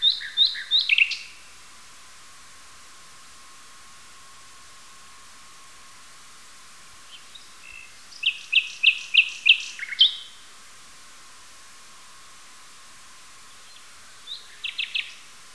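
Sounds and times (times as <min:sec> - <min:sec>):
nightingale song with loud repeated chirps: 0:00.0 - 0:01.5, 0:07.0 - 0:10.5, 0:13.4 - 0:15.3.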